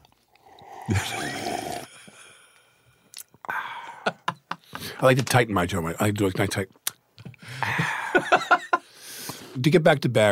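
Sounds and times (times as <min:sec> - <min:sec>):
wet slurp of coffee being sipped while on the phone: 0:00.3 - 0:01.9
speech: 0:00.9 - 0:01.9, 0:05.0 - 0:06.8, 0:09.6 - 0:10.3
short smacking and clicking mouth sounds: 0:02.6 - 0:03.5, 0:06.8 - 0:07.4
laughter: 0:07.6 - 0:08.8.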